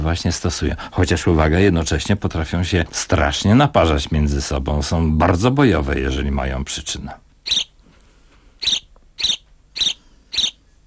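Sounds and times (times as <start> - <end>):
speech: 0.0 - 7.7
contented, well-fed sparrow chirping quietly: 7.4 - 7.8, 8.6 - 10.8.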